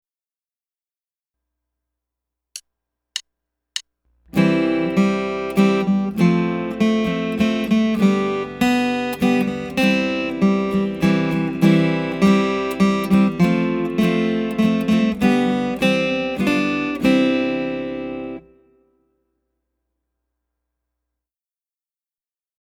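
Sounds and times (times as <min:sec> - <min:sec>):
waltz music: 0:04.4 - 0:18.4.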